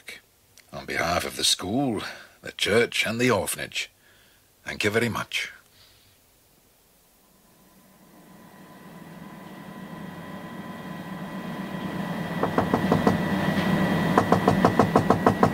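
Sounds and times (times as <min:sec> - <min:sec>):
speech: 0:00.9 - 0:04.0, 0:04.7 - 0:05.6
sharp knocking on a door: 0:12.4 - 0:13.2, 0:14.1 - 0:15.5.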